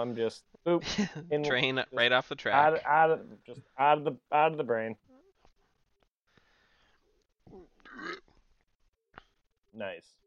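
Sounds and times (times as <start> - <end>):
speech: 0.0 - 5.1, 9.8 - 10.2
loud guttural burp: 7.8 - 8.3.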